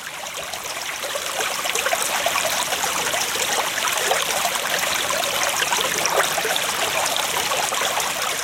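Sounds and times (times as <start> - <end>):
babbling mountain stream over rocks: 0.0 - 8.4.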